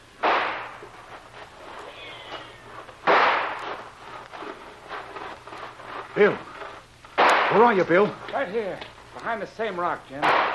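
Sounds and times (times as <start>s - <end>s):
faint hum: 0.0s - 10.5s
gunshots signalling a charge in a frontier skirmish: 0.2s - 0.8s, 3.0s - 3.8s, 7.2s - 7.8s, 10.2s - 10.5s
speech: 6.2s - 6.5s, 7.5s - 10.5s.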